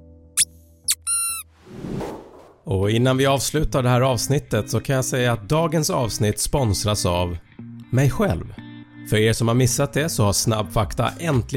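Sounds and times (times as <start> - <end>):
squeaky dog chew toy squeaking: 0.9 - 1.5
speech: 2.6 - 11.5.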